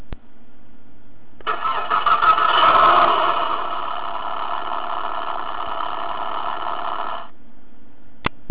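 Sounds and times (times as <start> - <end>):
toy car sound steering wheel engine start sound: 1.4 - 7.3.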